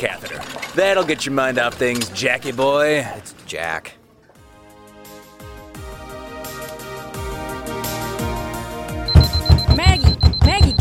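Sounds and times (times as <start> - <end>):
speech: 0.0 - 4.0
loud steady high beep of a phone alarm: 9.1 - 10.7
rapid repeating chirps of a phone alarm: 9.1 - 10.7.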